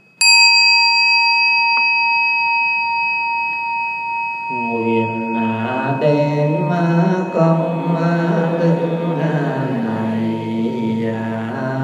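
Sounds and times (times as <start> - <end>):
single bell strike ringing with shimmering overtones: 0.0 - 11.2.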